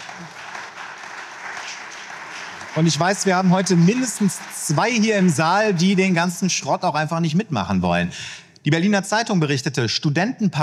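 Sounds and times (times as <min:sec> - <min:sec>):
audience applause in a hall: 0:00.0 - 0:06.8
speech: 0:02.8 - 0:10.6.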